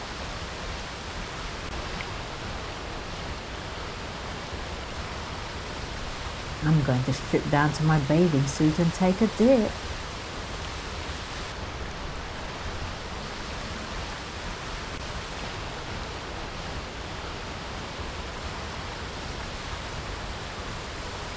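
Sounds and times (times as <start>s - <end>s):
water rushing in a stream: 0.0s - 21.3s
speech: 6.6s - 10.0s.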